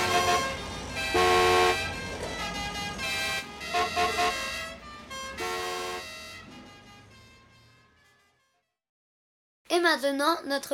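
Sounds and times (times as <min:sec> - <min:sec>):
low steady rumble of idling engines: 0:00.0 - 0:07.8
car horns honking in a traffic jam: 0:00.0 - 0:08.7
speech: 0:09.9 - 0:10.7.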